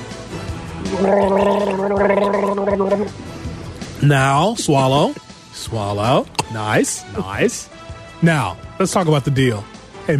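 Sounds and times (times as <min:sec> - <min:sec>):
person imitating gargling: 0:00.8 - 0:03.2
speech: 0:00.9 - 0:03.4, 0:04.0 - 0:10.1.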